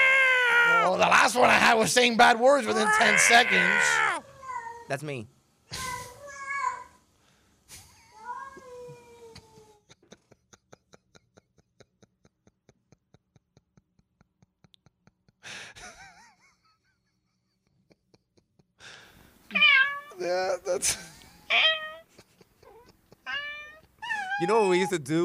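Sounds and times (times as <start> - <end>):
cat meowing from a video: 0.0 - 1.1, 2.7 - 4.9, 19.5 - 20.2, 21.5 - 22.1, 22.7 - 24.9
speech: 0.8 - 4.2, 4.9 - 5.9, 24.5 - 25.2
laughter: 9.9 - 18.7, 20.7 - 21.4, 22.1 - 23.9.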